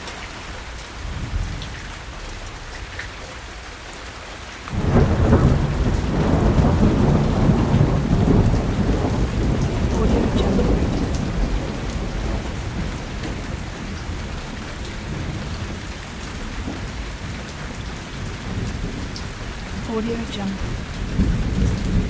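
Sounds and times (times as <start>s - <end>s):
gentle rain: 0.0s - 22.0s
thunder rolling: 4.7s - 22.0s.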